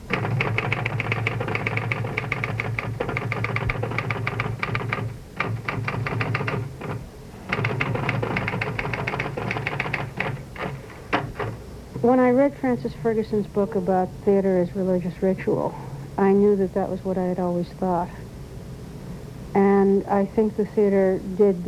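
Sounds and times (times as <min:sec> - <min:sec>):
typewriter keys clacking at a dining room table: 0:00.0 - 0:11.6
speech: 0:12.1 - 0:18.2, 0:20.0 - 0:21.6.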